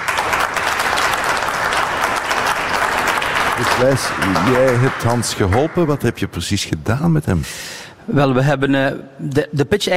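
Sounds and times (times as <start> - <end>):
crowd applauding: 0.0 - 6.2
speech: 3.6 - 9.9.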